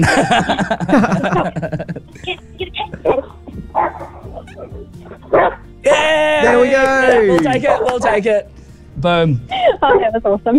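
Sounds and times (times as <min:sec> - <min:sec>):
speech: 0:00.0 - 0:01.5, 0:06.0 - 0:10.5
laughter: 0:00.0 - 0:08.4
dog barking and yipping: 0:03.0 - 0:08.3.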